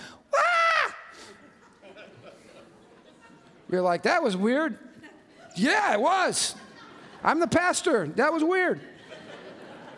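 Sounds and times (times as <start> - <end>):
person vocally imitating the shriek of a spirit: 0.3 - 1.2
laughter: 1.2 - 3.7, 4.9 - 8.0, 8.8 - 9.9
speech: 3.7 - 4.9, 5.6 - 6.6, 7.2 - 8.9.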